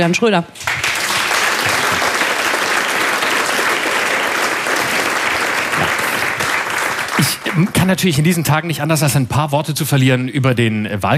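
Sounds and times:
speech: 0.0 - 0.9, 7.6 - 11.1
loud sustained applause from a large audience: 0.6 - 8.2.

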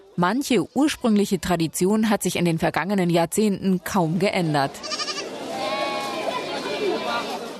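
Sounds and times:
speech: 0.2 - 5.1
crowd murmur of voices at a livestock market: 4.1 - 7.5
sheep bleating at a livestock market in Nizwa Oman: 4.8 - 6.1.

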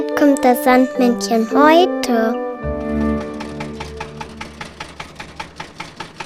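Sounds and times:
speech: 0.2 - 2.4
tractor engine chugging: 3.2 - 6.2.

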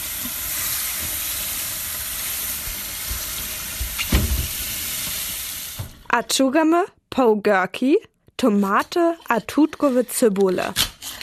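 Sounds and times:
tap water running as vegetables are washed: 0.0 - 6.2
speech: 6.1 - 10.9.

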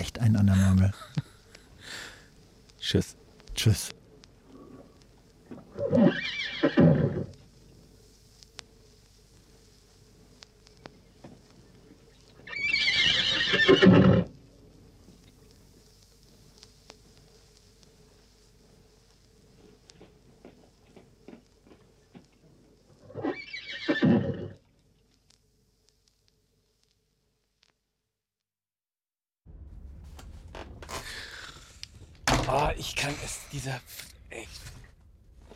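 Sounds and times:
speech: 0.0 - 1.2, 2.8 - 4.0, 33.5 - 34.6
horse whinnying: 5.8 - 7.3, 12.4 - 14.3, 23.1 - 24.6.

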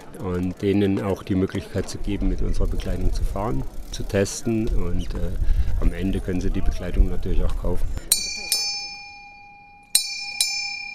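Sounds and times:
faint noise: 0.0 - 10.9
speech: 0.1 - 8.2
bell clanging with a bright metallic tone: 8.1 - 10.9.

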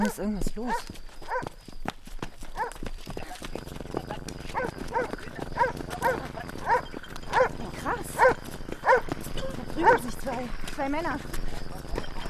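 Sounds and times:
dog barking aggressively: 0.0 - 1.5, 2.6 - 2.8, 4.5 - 9.1, 9.8 - 10.1
speech: 0.0 - 1.5, 9.8 - 11.4
low steady hum: 3.2 - 12.2.

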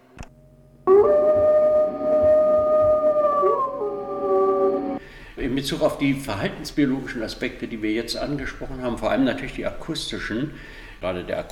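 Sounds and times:
two wolves howling together: 0.9 - 5.0
speech: 5.5 - 11.4.

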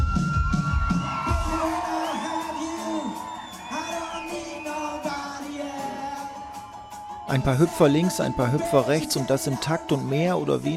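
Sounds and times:
shrill rising shouts and whistles: 0.0 - 9.1
large concert audience cheering, laughing and whooping: 0.1 - 7.3
speech: 7.3 - 10.7.

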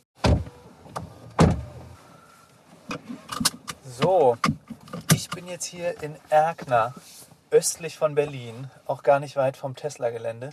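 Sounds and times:
Tesla Model 3 car door closing: 0.2 - 2.0, 2.8 - 7.0
speech: 3.9 - 4.6, 5.2 - 10.5.

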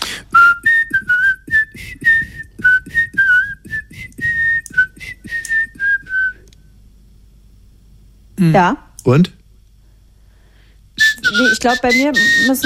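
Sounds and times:
person whistling a lively classical melody: 0.3 - 6.5, 11.0 - 12.6
speech: 8.4 - 9.4, 11.4 - 12.6.

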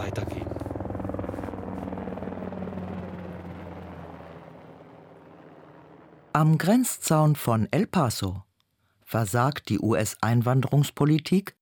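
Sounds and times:
speech: 0.0 - 0.4, 6.4 - 8.4, 9.1 - 11.5
helicopter flying overhead at the US border fence in El Paso: 0.0 - 6.4.

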